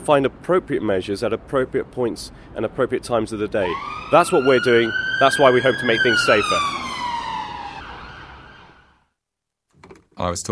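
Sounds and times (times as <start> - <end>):
speech: 0.0 - 6.8, 10.2 - 10.5
police car siren wailing as it passes: 3.6 - 9.0.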